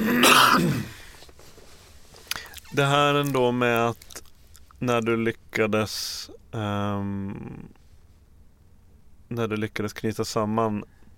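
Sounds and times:
single short raspy cough: 0:00.0 - 0:01.0
speech: 0:00.6 - 0:01.0, 0:02.7 - 0:04.1, 0:04.8 - 0:07.8, 0:09.3 - 0:11.1.

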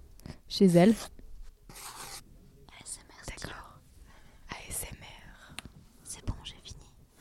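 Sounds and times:
speech: 0:00.5 - 0:01.2
pen scratching on paper drawing circles around a drawn human body: 0:01.7 - 0:02.2
person whispering: 0:02.7 - 0:03.8, 0:04.5 - 0:07.0.

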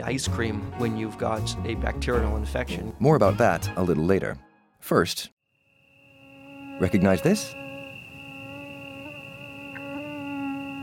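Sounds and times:
speech: 0:00.0 - 0:05.4, 0:06.8 - 0:07.6
mosquito buzzing: 0:05.5 - 0:10.8.

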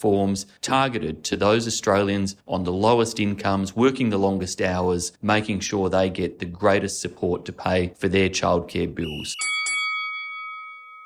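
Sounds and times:
speech: 0:00.0 - 0:09.6
bell ringing: 0:09.3 - 0:11.0.

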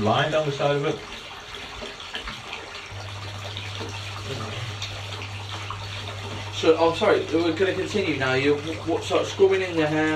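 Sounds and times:
speech: 0:00.0 - 0:01.3, 0:06.6 - 0:10.1
tap water running into a bathtub: 0:00.0 - 0:10.1.

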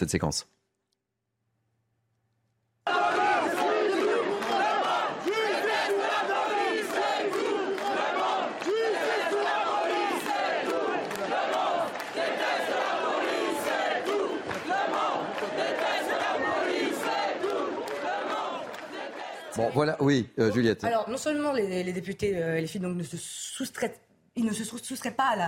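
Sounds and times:
speech: 0:00.0 - 0:00.6, 0:19.6 - 0:25.4
large protest crowd chanting a slogan in unison: 0:02.9 - 0:20.0.

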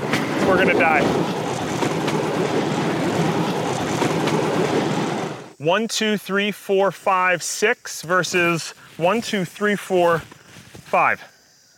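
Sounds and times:
bamboo railroad train rolling along the tracks: 0:00.0 - 0:05.6
speech: 0:00.5 - 0:01.4, 0:02.4 - 0:03.3, 0:05.6 - 0:11.3.

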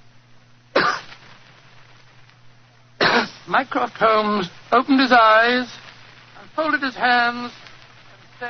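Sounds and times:
faint low hum in a quiet room: 0:00.0 - 0:08.4
single short discreet cough: 0:00.8 - 0:01.1, 0:03.0 - 0:03.4
speech: 0:03.5 - 0:05.8, 0:06.6 - 0:07.6.

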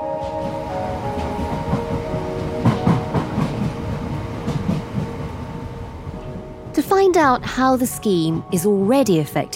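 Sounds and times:
train rumbling along the rails: 0:00.1 - 0:08.9
rhythmic clicks and clacks of train on rails: 0:00.2 - 0:07.3
speech: 0:07.0 - 0:09.5.

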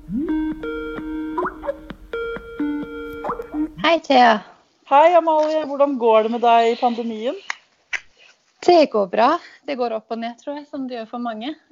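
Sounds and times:
video call app incoming-call ringtone melody: 0:00.0 - 0:03.9
speech: 0:03.9 - 0:07.5, 0:08.6 - 0:11.7.

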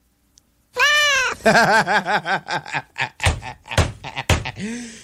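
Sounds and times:
cat meowing loudly: 0:00.8 - 0:01.4
speech: 0:01.5 - 0:02.9
dull thumps: 0:03.2 - 0:04.7.

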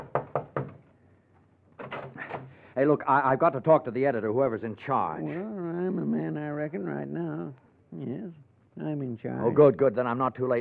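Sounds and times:
fist pounding on a door: 0:00.0 - 0:00.8
speech: 0:02.8 - 0:10.5.

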